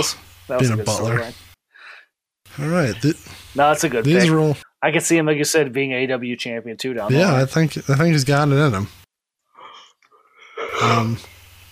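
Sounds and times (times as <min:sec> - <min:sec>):
speech: 0:00.0 - 0:01.4, 0:02.6 - 0:09.0, 0:10.7 - 0:11.3
big drawn-out yawn: 0:10.5 - 0:11.3.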